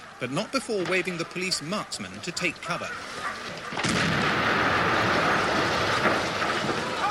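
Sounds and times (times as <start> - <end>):
speech: 0.2 - 4.3
dense roaring rumble of debris: 3.0 - 7.0
short-fuse demolition charge exploding against a balcony sill: 3.8 - 7.0.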